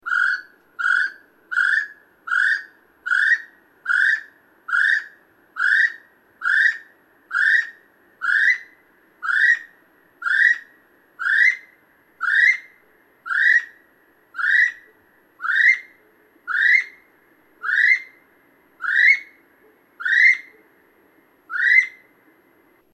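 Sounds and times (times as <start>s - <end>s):
female North Island saddleback calling: 0.0s - 12.7s, 14.4s - 15.9s, 17.6s - 18.2s, 18.8s - 19.4s, 20.0s - 20.6s, 21.5s - 22.0s.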